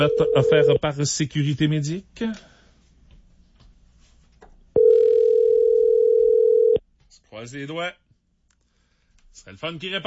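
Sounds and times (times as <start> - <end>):
speech: 0.0 - 2.5, 7.4 - 8.0, 9.4 - 10.0
telephone dial tone while calling a contest winner: 0.1 - 0.7, 4.8 - 6.8.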